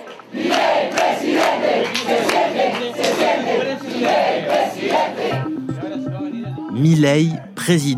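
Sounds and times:
supporters cheering and chanting in a packed hotel hall in Buenos Aires: 0:00.0 - 0:07.9
stepped musical tones: 0:01.8 - 0:07.9
speech: 0:06.8 - 0:07.9.

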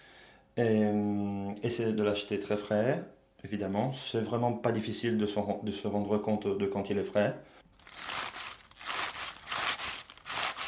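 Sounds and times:
speech: 0:00.6 - 0:08.1
fresh Swiss chard leaves crunching and crinkling: 0:07.8 - 0:10.6.

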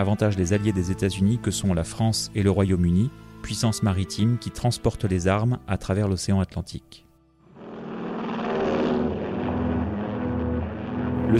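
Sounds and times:
speech: 0:00.0 - 0:07.1
bomber propeller aircraft engines droning overhead: 0:07.5 - 0:11.3.

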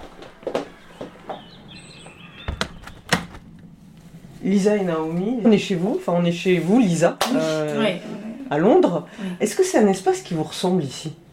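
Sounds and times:
birds chirping outdoors: 0:00.0 - 0:04.4
low ambient rumble: 0:00.0 - 0:11.3
speech: 0:04.4 - 0:11.2.

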